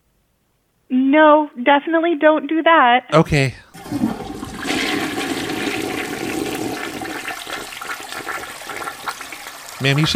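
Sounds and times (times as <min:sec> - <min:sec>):
speech: 0:01.1 - 0:04.1, 0:09.8 - 0:10.1
toilet flushing: 0:03.7 - 0:10.1.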